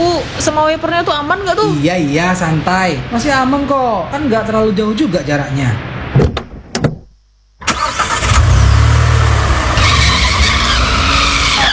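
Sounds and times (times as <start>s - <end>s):
speech: 0.2s - 5.9s
sharp knocks: 6.2s - 7.1s
car engine roaring: 7.7s - 11.7s
car tire screeching on a slippery wet road in the dark: 7.7s - 11.7s.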